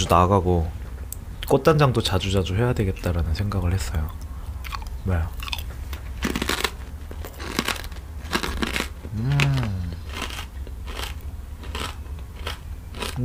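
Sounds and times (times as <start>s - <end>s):
speech: 0.0s - 0.8s, 1.5s - 4.2s, 5.0s - 5.5s
potato chips crunching: 4.6s - 5.6s, 6.2s - 13.2s
person humming: 9.1s - 10.1s.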